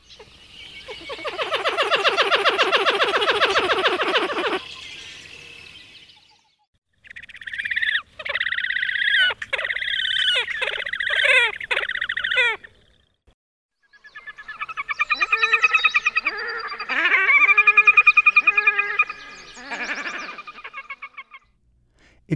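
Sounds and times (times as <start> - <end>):
pied-billed grebe, horned grebe and red-necked grebe calls: 0.1 - 4.8, 7.0 - 12.8, 14.3 - 21.5.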